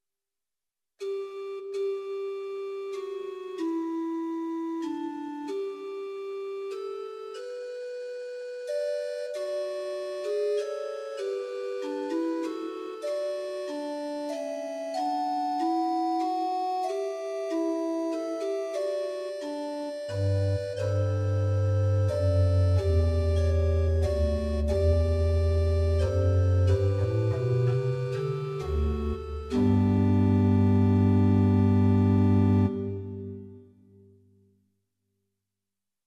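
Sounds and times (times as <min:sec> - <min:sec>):
short organ music on Rohrflöte 8 stop in Werckmeister temperament: 0:01.0 - 0:33.9.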